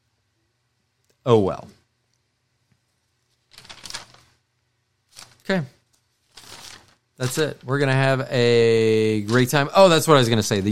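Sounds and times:
speech: 1.2 - 1.8, 5.5 - 5.7, 7.2 - 10.7
paper being shuffled or crumpled: 3.2 - 4.4, 5.0 - 8.2, 9.1 - 10.7.

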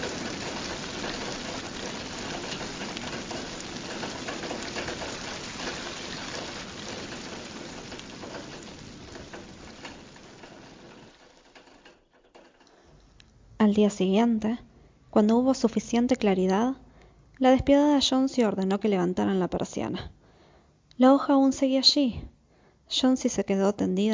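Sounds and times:
rain hammering on windows: 0.0 - 12.6
speech: 13.6 - 16.8, 17.4 - 20.2, 21.0 - 22.3, 22.9 - 24.1.

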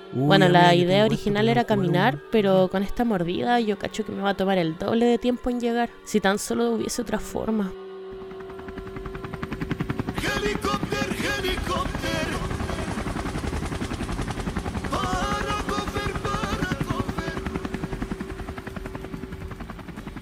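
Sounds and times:
speech: 0.1 - 7.8
police helicopter rotor blades thumping low overhead: 8.2 - 20.2.

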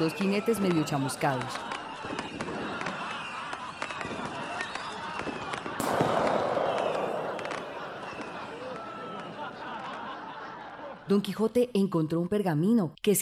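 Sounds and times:
speech: 0.0 - 2.2, 11.1 - 13.2
laughter: 0.6 - 11.4
string of firecrackers popping and crackling: 1.6 - 10.2.

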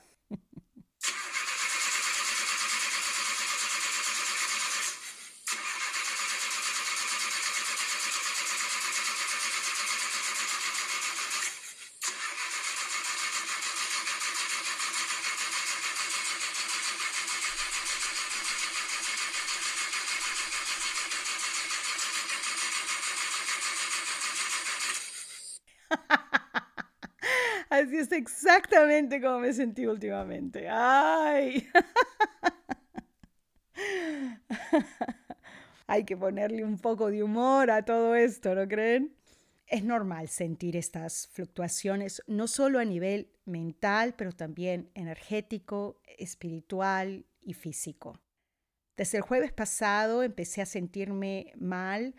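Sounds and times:
old car engine cranking and struggling to start: 1.0 - 25.6
laughter: 25.9 - 27.6, 31.6 - 35.4
speech: 27.8 - 31.8, 36.0 - 48.2, 49.0 - 52.1.

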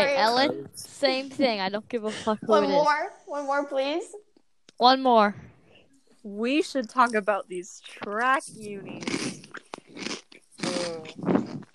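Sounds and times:
speech: 0.0 - 4.2, 4.8 - 5.5, 6.2 - 9.4, 10.9 - 11.7
crunchy bite of food: 9.0 - 11.7.

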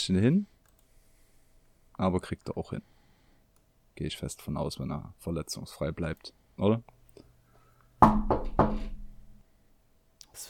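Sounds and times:
speech: 0.0 - 0.5, 2.0 - 3.0, 4.0 - 7.0, 8.0 - 8.9
firm knocking on wood: 8.0 - 9.1.

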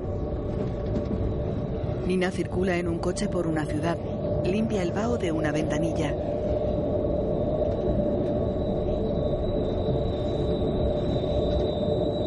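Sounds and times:
train passing through stations rumbling with high whine: 0.0 - 12.2
speech: 2.1 - 6.4.

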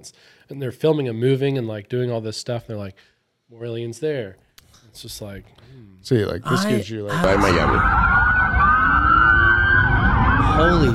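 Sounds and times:
speech: 0.0 - 8.2, 10.6 - 10.9
sirens of a line of police cars passing: 6.5 - 10.9.

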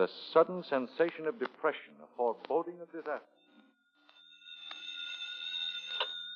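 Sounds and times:
speech: 0.0 - 3.4
telephone ringing with a high-pitched electronic trill: 3.4 - 6.3.

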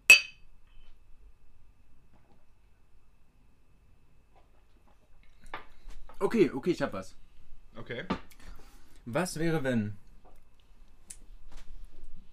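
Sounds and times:
glasses clinking in a toast: 0.1 - 0.4
speech: 6.2 - 7.2, 7.8 - 8.2, 9.0 - 10.0.

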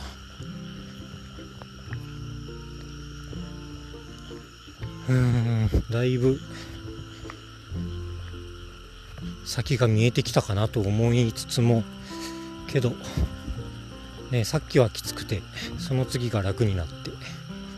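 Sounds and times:
dense chorus of frogs croaking in rice paddies beside a river: 0.0 - 17.7
speech: 5.1 - 6.7, 9.5 - 12.0, 12.7 - 13.3, 14.3 - 17.1.

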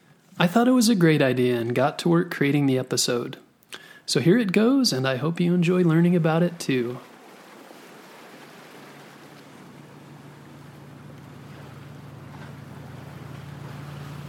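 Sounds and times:
speech: 0.4 - 3.5, 4.1 - 7.1
ocean water washing and splashing against a moving boat: 4.4 - 14.2
steady low boat engine drone: 8.7 - 14.2.

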